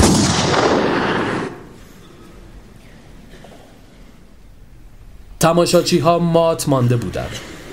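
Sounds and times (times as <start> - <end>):
revolver gunshot with long rumbling echo: 0.0 - 1.8
speech: 5.4 - 7.6.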